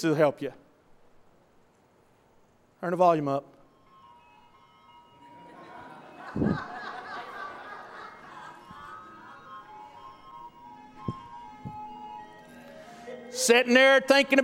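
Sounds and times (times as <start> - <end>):
speech: 0.0 - 0.6, 2.8 - 3.6, 6.3 - 6.8, 13.4 - 14.4
ice cream truck jingle: 3.7 - 14.4
laughter: 5.4 - 9.6.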